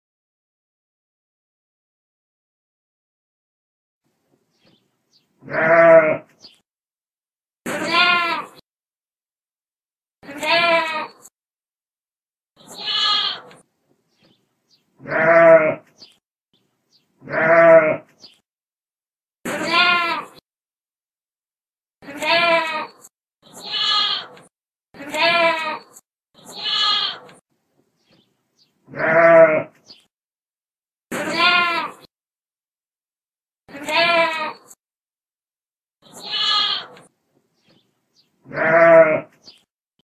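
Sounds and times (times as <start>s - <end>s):
goat bleating: 5.4s - 6.3s, 7.7s - 8.6s, 10.2s - 11.3s, 12.6s - 13.6s, 15.0s - 15.9s, 17.2s - 18.1s, 19.5s - 20.4s, 22.0s - 24.4s, 25.0s - 27.3s, 28.9s - 29.8s, 31.1s - 32.1s, 33.7s - 34.8s, 36.0s - 37.1s, 38.5s - 39.3s.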